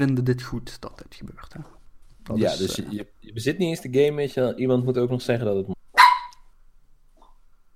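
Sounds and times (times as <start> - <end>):
speech: 0.0 - 5.8
chihuahua barking: 6.0 - 6.4.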